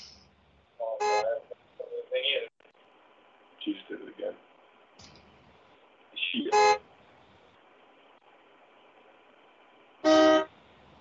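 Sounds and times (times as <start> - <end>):
steady low hum of traffic: 0.0 - 10.9
car horn honks: 1.0 - 1.4, 6.5 - 6.8, 10.0 - 10.5
speech: 3.6 - 4.5.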